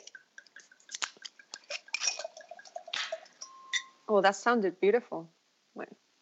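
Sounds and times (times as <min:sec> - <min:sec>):
wine being poured into a glass: 0:00.0 - 0:04.0
bright clinks of a glass: 0:02.0 - 0:02.3, 0:03.4 - 0:04.0
speech: 0:04.1 - 0:06.0.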